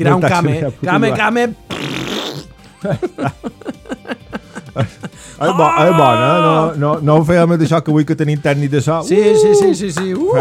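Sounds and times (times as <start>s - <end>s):
speech: 0.0s - 3.8s, 4.8s - 10.3s
fart: 1.7s - 2.6s
laughter: 2.7s - 6.7s.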